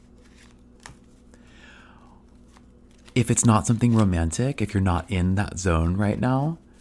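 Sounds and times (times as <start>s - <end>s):
tarot cards being shuffled: 0.0s - 1.4s, 2.2s - 4.6s
steady low hum: 0.0s - 6.7s
speech: 3.2s - 6.6s.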